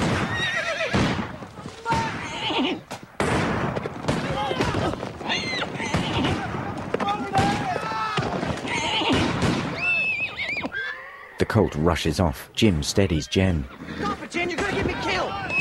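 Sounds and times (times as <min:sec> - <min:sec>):
agitated horses whinnying and neighing: 0:00.0 - 0:01.3, 0:01.9 - 0:02.9, 0:04.4 - 0:11.8, 0:13.6 - 0:15.5
sharp gunshots cracking: 0:00.0 - 0:02.4, 0:03.0 - 0:10.0
clattering horse hooves: 0:00.0 - 0:11.8, 0:12.9 - 0:15.5
shouting: 0:04.2 - 0:08.8, 0:13.9 - 0:15.5
speech: 0:11.6 - 0:14.2.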